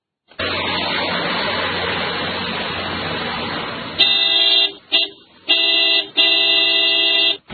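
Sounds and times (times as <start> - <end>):
busy street traffic rumbling at an intersection in Lubumbashi: 0.2 - 7.5
car horns honking at an intersection in Lubumbashi: 4.0 - 7.5.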